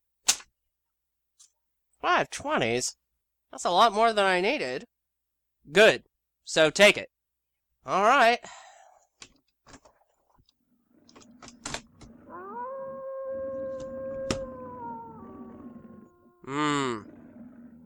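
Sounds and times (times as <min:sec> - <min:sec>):
speech: 0:02.0 - 0:04.9, 0:05.6 - 0:07.1, 0:07.8 - 0:08.6, 0:16.5 - 0:17.1
faint rumbling: 0:10.8 - 0:17.8
dog howling in the night: 0:11.1 - 0:17.8.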